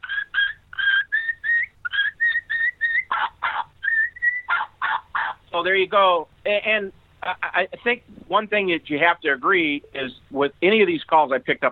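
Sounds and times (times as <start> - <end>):
turkey kee-kee run on a mouth call: 0.0 - 5.4
speech: 5.5 - 11.7.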